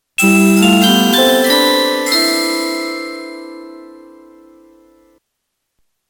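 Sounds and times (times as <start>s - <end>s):
music: 0.2s - 5.0s.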